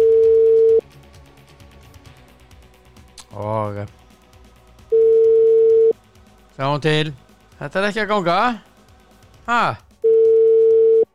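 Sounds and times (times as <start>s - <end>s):
telephone ringback tone while a call is placed: 0.0s - 0.8s, 4.9s - 5.9s, 10.0s - 11.1s
speech: 3.7s - 4.0s, 6.6s - 8.7s, 9.5s - 9.8s.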